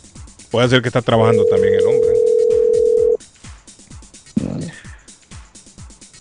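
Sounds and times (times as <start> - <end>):
speech: 0.5 - 2.1
telephone ringback tone through the phone line: 1.2 - 3.2.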